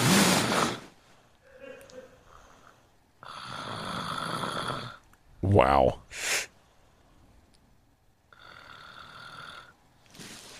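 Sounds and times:
woman snoring in her sleep: 3.2 - 5.0, 8.3 - 10.4
speech: 5.5 - 6.5.

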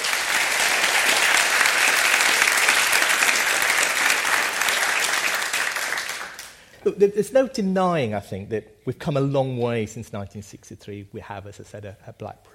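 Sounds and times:
sizable audience applauding: 0.0 - 6.6
speech: 6.9 - 12.5.

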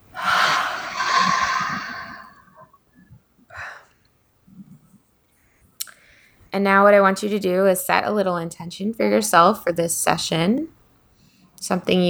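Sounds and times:
person slowly inhaling and exhaling in a guided breathing exercise: 0.1 - 2.5
speech: 6.6 - 10.8, 11.6 - 12.0.

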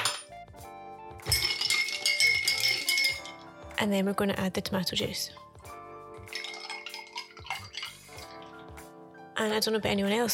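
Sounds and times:
ice clinking in a glass as a vodka drink is stirred: 0.0 - 0.3, 1.2 - 3.5, 6.3 - 8.6
speech: 3.8 - 5.5, 9.4 - 10.3.

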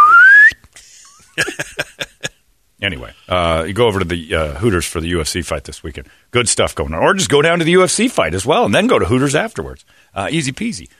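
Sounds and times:
slide whistle sound effect rising in pitch: 0.0 - 0.6
laughter: 0.8 - 2.3
speech: 2.8 - 10.9.

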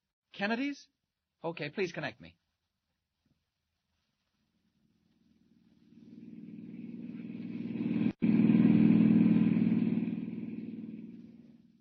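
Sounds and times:
speech: 0.4 - 2.4
car driving past on a dusty road: 5.4 - 11.7.

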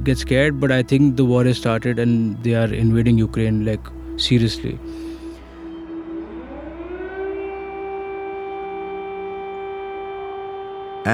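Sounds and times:
speech: 0.0 - 5.0
air raid siren wailing: 2.4 - 11.1.

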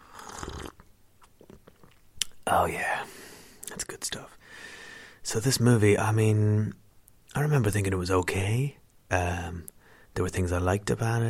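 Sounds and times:
slurping sip of hot tea: 0.0 - 0.8
faint swallowing and mouth clicks: 0.2 - 2.4
speech: 2.5 - 3.1, 3.8 - 11.2.

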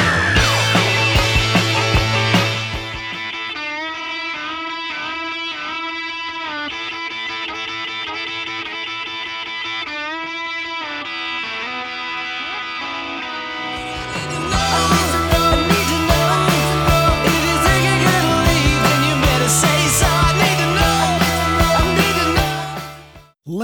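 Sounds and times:
full rock band playing: 0.0 - 4.5, 12.8 - 23.3
electric guitar solo in a rock song: 0.0 - 19.5.

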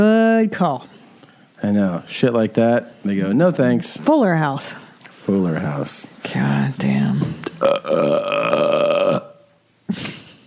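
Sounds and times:
speech: 0.0 - 0.9, 1.6 - 9.2
abrupt throaty sound: 7.4 - 9.5
long loud croaking burp: 7.6 - 9.5.

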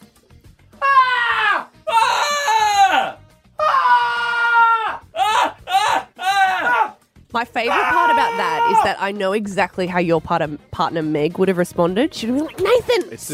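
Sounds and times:
person imitating two people screaming at each other along a street: 0.8 - 7.0, 7.7 - 8.9
speech: 7.5 - 13.3.

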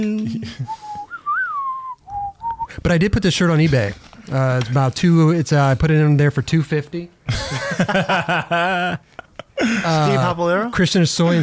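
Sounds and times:
speech: 0.0 - 0.9, 2.8 - 11.4
person whistling a short clear melody: 0.6 - 2.8
laughter: 7.3 - 10.4.

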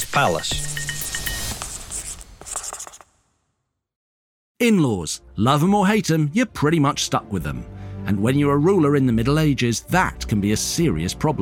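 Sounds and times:
speech: 0.2 - 0.8, 4.6 - 11.4
pen scratching across paper: 1.7 - 3.1.

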